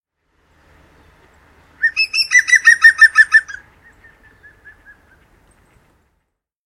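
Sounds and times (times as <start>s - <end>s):
European green woodpecker giving its ringing laughing call: 1.8s - 5.3s.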